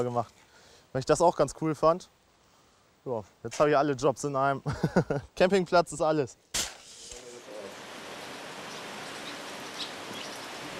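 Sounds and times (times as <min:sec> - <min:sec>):
speech: 0:00.0 - 0:02.2, 0:03.0 - 0:06.5
steady rain falling with patters on a surface: 0:07.2 - 0:10.7.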